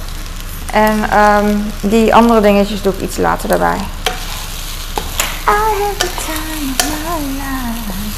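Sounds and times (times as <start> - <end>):
chicken frying in a pan with a little oil on a heat source: 0.0 - 8.1
speech: 0.7 - 4.0, 5.5 - 7.6
utensil clicking and scraping against the pan: 4.0 - 7.0.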